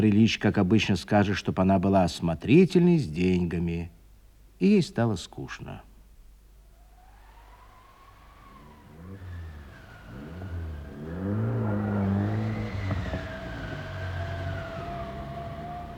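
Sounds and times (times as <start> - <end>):
speech: 0.0 - 4.0, 4.6 - 5.9
car wheels spinning and skidding in snow: 6.8 - 15.9
car engine revving and straining: 7.0 - 15.9.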